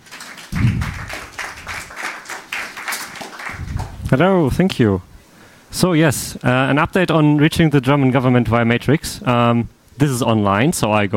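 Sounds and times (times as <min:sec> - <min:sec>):
audience applauding a speaker being introduced for a talk: 0:00.0 - 0:04.1
speech: 0:04.1 - 0:05.1, 0:05.7 - 0:11.1.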